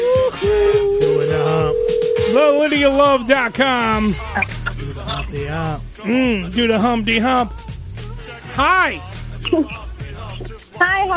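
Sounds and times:
telephone dial tone: 1.0s - 2.4s
speech: 2.4s - 7.7s, 8.6s - 9.8s, 10.8s - 11.1s.

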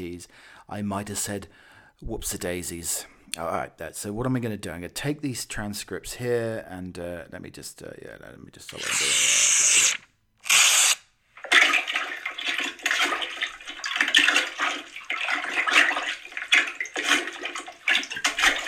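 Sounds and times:
speech: 0.0s - 9.4s
toilet flushing: 11.4s - 18.6s.

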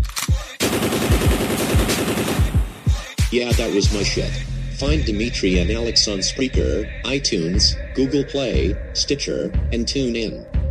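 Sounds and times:
machine gun fire sound effect: 0.5s - 3.9s
speech: 3.3s - 10.6s.

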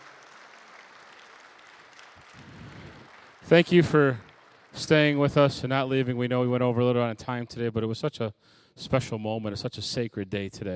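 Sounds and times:
audience clapping: 0.0s - 6.3s
speech: 3.5s - 10.7s.

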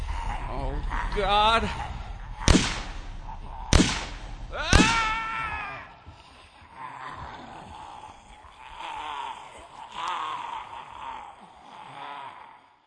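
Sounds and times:
chorus of overlapping raspy zombie moans and groans: 0.0s - 3.7s, 4.5s - 12.8s
speech: 0.8s - 2.0s.

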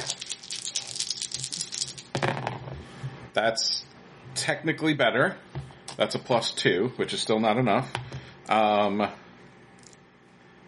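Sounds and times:
dice rolled for a reroll in a tabletop roleplaying game: 0.0s - 2.1s
speech: 3.4s - 3.8s, 4.4s - 9.2s.

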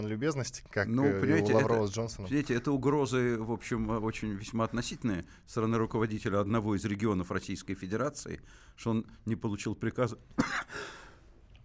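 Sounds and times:
speech: 0.0s - 11.0s
person coughing and clearing throat: 10.4s - 11.0s.

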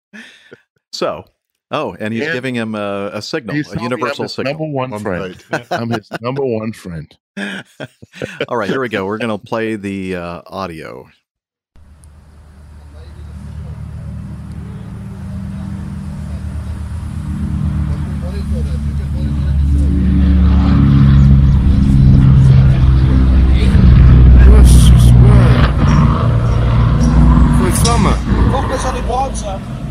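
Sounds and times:
laughter: 0.2s - 0.6s, 1.9s - 10.3s
speech: 0.9s - 11.2s
heavy aircraft engine droning: 11.8s - 29.9s.

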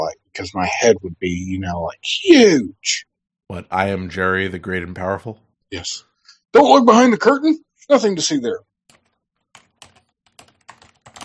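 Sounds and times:
speech: 0.0s - 8.7s
typing on a computer keyboard: 8.9s - 11.2s.

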